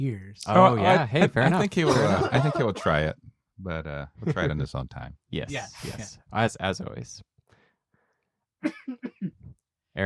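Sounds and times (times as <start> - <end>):
speech: 0.0 - 7.3, 8.6 - 9.1
laughter: 0.6 - 3.1, 4.2 - 4.7
person coughing: 1.7 - 3.0, 8.6 - 9.4.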